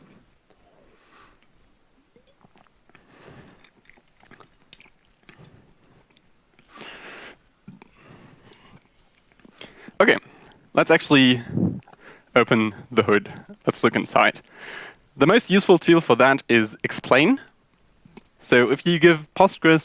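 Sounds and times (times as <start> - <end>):
person sipping and swallowing water: 0.5 - 10.7, 11.4 - 12.2, 14.4 - 14.7
speech: 10.0 - 11.6, 12.4 - 14.3, 15.2 - 17.5, 18.4 - 19.8.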